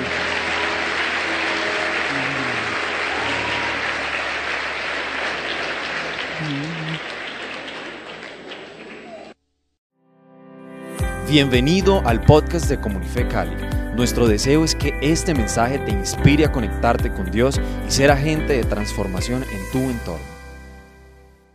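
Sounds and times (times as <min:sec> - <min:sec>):
audience applauding: 0:00.0 - 0:09.4
speech: 0:11.3 - 0:20.4.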